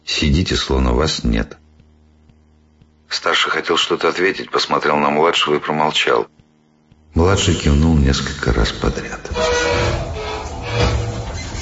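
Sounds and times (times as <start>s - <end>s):
faint mechanical hum: 0.0s - 11.6s
speech: 0.2s - 1.6s, 3.1s - 6.4s, 7.1s - 9.9s
low rumble of a train beginning to move: 9.3s - 11.6s.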